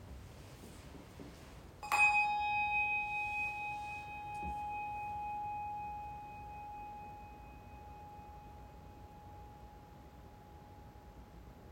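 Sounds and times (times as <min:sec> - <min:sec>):
single bell struck to begin a service: 0:01.8 - 0:09.7.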